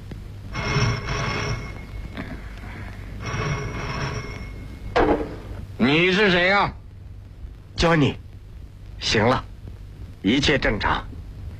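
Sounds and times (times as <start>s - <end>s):
telephone ringing with trilling bursts: 0.5s - 5.6s
speech: 5.8s - 6.8s, 7.8s - 8.2s, 9.0s - 9.5s, 10.2s - 11.2s.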